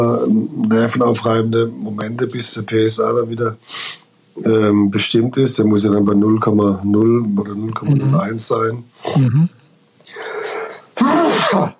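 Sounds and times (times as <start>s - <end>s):
speech: 0.0s - 10.3s, 11.0s - 11.7s
person sneezing: 10.2s - 11.7s.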